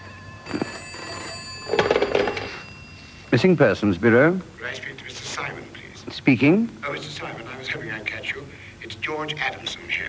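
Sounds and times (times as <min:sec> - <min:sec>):
telephone bell ringing: 0:00.0 - 0:03.4
speech: 0:03.4 - 0:08.4, 0:09.0 - 0:10.0.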